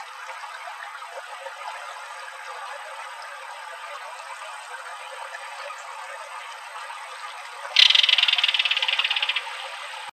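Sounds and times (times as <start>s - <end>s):
belted kingfisher rattle call in Arizona: 7.8s - 9.8s.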